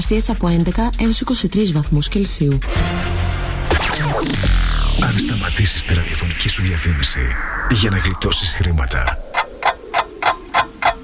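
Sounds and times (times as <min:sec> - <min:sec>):
speech: 0:00.0 - 0:03.2, 0:03.8 - 0:09.2
clock ticking: 0:09.3 - 0:11.0.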